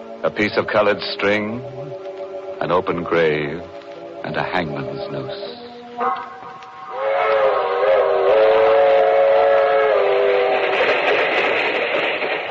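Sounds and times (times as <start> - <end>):
long passenger train rumbling along the rails: 0.0 - 12.4
speech: 0.2 - 6.4
loud sustained whistle: 6.0 - 10.7.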